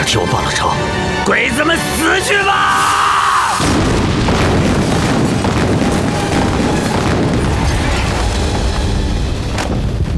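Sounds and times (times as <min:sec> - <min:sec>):
speech: 0:00.1 - 0:03.1
explosions: 0:03.5 - 0:10.1.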